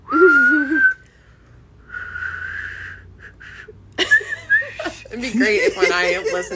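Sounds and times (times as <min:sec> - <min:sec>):
person whistling: 0:00.0 - 0:01.0, 0:01.9 - 0:03.7
laughter: 0:04.0 - 0:06.5
speech: 0:05.2 - 0:06.5.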